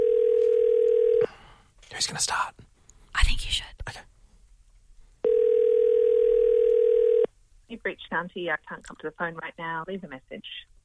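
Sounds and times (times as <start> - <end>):
telephone dial tone while calling: 0.0 - 1.3, 5.2 - 7.3
speech: 2.0 - 4.1, 7.8 - 10.8.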